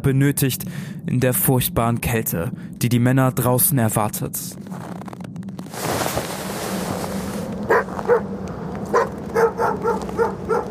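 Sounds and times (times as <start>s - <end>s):
speech: 0.0s - 5.0s
light west wind on a cold polar night: 4.6s - 10.6s
restless sled dogs barking, yipping and scraping beside a loaded sled: 7.7s - 8.3s, 8.9s - 10.6s.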